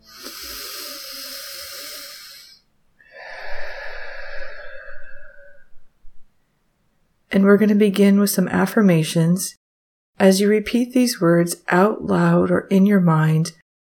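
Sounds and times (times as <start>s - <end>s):
person taking a deep breath in through the nose and out through the mouth: 0.0s - 6.5s
speech: 7.3s - 9.6s, 10.2s - 13.6s.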